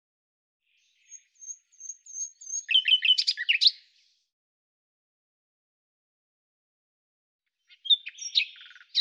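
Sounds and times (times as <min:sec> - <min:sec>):
common nightingale song with whistled notes and rapid trill: 0:00.6 - 0:04.2, 0:07.5 - 0:09.0.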